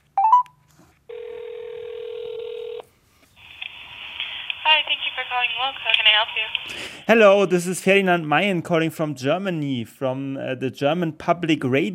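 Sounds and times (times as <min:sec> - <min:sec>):
ringback tone on an outgoing telephone call to a café: 0:00.2 - 0:00.5, 0:01.1 - 0:02.8
speech: 0:05.7 - 0:11.9.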